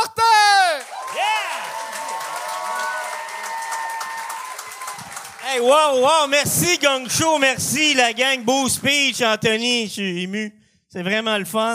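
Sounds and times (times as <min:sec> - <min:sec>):
audience whooping and cheering: 0:00.0 - 0:09.3
speech: 0:05.5 - 0:11.7.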